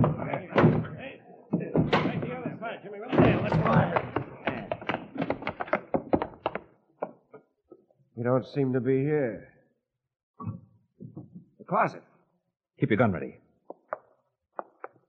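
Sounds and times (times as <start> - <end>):
door being battered and forced open: 0.0 - 6.6
scuffling, creaking and clatter of people moving about: 0.0 - 7.1
speech: 8.2 - 9.5, 11.7 - 12.1, 12.8 - 13.4.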